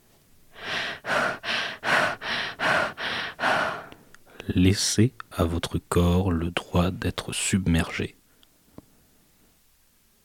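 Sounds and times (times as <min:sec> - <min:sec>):
rapid breathing during a guided rapid-breathing exercise: 0:00.5 - 0:04.5
speech: 0:04.5 - 0:08.2.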